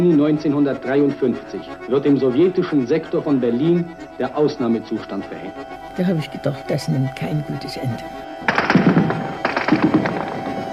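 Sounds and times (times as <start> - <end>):
speech: 0.0 - 8.6
heavy gunfire during the 17 June 1953 uprising in Berlin: 8.5 - 10.4.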